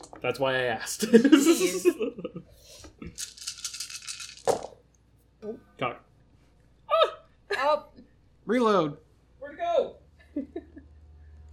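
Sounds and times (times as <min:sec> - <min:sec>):
speech: 0:00.2 - 0:03.2, 0:05.4 - 0:06.0, 0:08.5 - 0:10.7
laughter: 0:01.0 - 0:02.5, 0:10.2 - 0:11.0
ten dice clattering across a hard tabletop in a tabletop game: 0:03.1 - 0:04.8.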